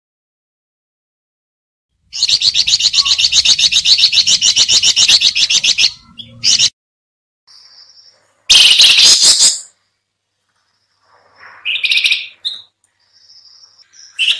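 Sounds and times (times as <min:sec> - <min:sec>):
sooty-headed bulbul chattering calls: 0:02.1 - 0:06.7, 0:07.6 - 0:09.7, 0:11.4 - 0:14.3.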